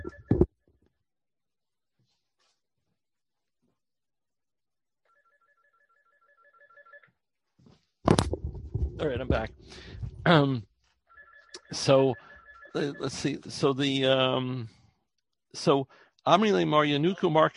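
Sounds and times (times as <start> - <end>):
phone ringing with a soft electronic trill: 0.0 - 0.5, 5.1 - 7.2, 11.1 - 13.2
speech: 9.0 - 10.7, 11.7 - 14.8, 15.5 - 17.5.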